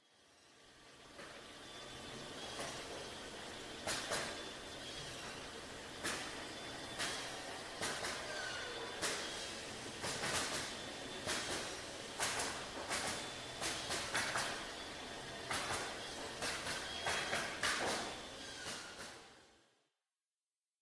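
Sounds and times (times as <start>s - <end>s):
sawmill: 0.0s - 19.8s.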